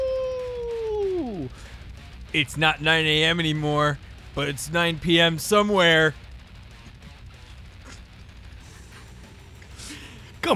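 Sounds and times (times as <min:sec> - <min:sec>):
wolf howling: 0:00.0 - 0:01.2
speech: 0:02.3 - 0:06.2.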